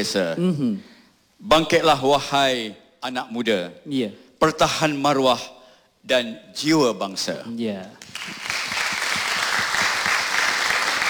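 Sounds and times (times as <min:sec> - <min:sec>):
speech: 0:00.0 - 0:08.5
applause from friends in an audience: 0:08.0 - 0:11.0.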